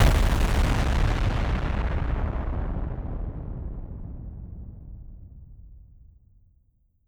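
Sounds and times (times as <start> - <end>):
large explosion: 0.0 - 5.6.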